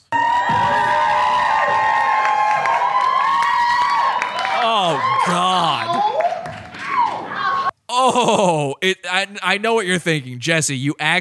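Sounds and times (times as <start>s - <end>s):
American comedy show audience screeching and cheering: 0.1s - 7.7s
speech: 8.2s - 11.1s.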